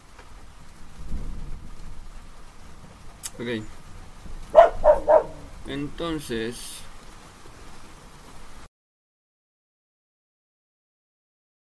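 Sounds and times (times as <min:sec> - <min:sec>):
speech: 0:03.4 - 0:03.8, 0:05.7 - 0:06.8
female dog barking: 0:04.5 - 0:05.6.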